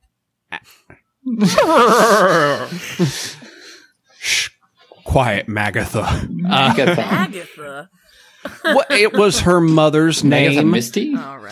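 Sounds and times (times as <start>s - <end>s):
speech: 0.9s - 3.4s, 5.2s - 11.5s
person imitating a horse's whinny: 1.3s - 2.8s
laughter: 1.3s - 3.6s, 6.0s - 7.7s, 8.5s - 9.8s.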